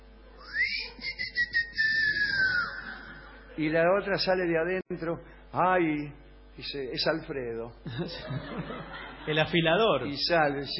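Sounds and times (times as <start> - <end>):
faint hum: 0.0 - 10.7
drawn-out whistle calling from a doorway: 0.4 - 3.0
laughter: 2.2 - 3.7, 7.8 - 10.1
speech: 3.6 - 10.7.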